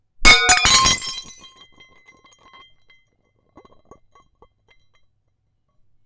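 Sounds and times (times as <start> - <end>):
plate shattering: 0.3 - 1.6.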